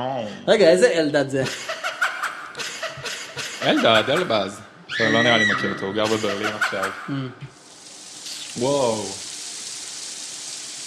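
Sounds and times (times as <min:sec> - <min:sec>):
speech: 0:00.0 - 0:01.8, 0:03.6 - 0:07.6, 0:08.6 - 0:09.2
laughter: 0:01.4 - 0:04.6, 0:06.0 - 0:07.0
steady rain: 0:07.5 - 0:10.8.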